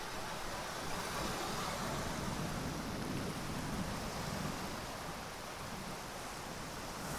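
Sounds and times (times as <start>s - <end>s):
incoming tide waves washing onto the shore of the Bay of St Brieuc in France: 0.0s - 7.1s.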